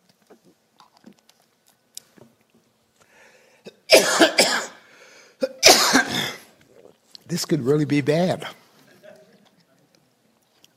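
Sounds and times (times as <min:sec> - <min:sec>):
person on stage coughing to clear the throat: 0:03.7 - 0:04.8, 0:05.4 - 0:06.5
speech: 0:07.3 - 0:08.6.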